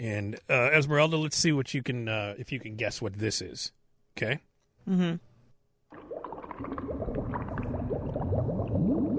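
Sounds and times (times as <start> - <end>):
speech: 0.0 - 5.3
thick lab chemicals bubbling and gurgling in a laboratory: 5.9 - 9.1.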